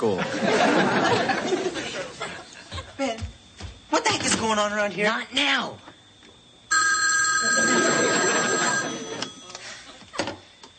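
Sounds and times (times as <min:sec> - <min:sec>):
speech: 0:00.0 - 0:01.6, 0:04.5 - 0:05.9
laughter: 0:00.0 - 0:03.0, 0:07.5 - 0:10.2
telephone ringing with electronic trill: 0:06.7 - 0:09.7.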